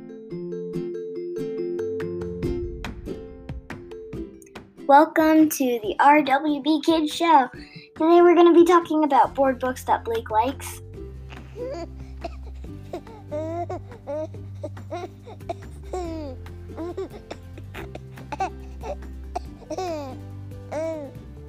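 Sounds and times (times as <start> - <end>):
low hum: 2.2 - 4.4
speech: 4.9 - 10.8
baby fussing and babbling: 11.2 - 21.2.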